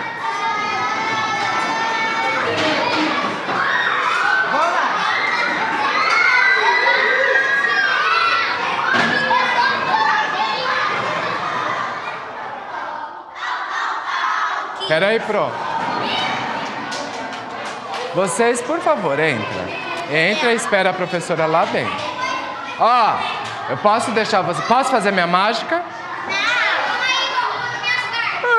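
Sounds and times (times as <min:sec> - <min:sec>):
many children shouting and yelling around a foosball table: 0:00.0 - 0:28.5
speech: 0:15.0 - 0:16.2, 0:18.2 - 0:22.0, 0:22.8 - 0:26.4.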